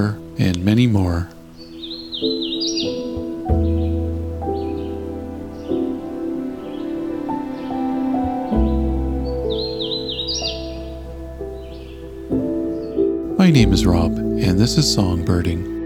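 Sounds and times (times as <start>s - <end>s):
speech: 0.0s - 1.4s, 2.2s - 3.0s, 13.4s - 15.7s
faint bird chirps: 1.4s - 13.2s
hooded warbler singing its primary song in a Carolinian forest: 1.4s - 15.6s.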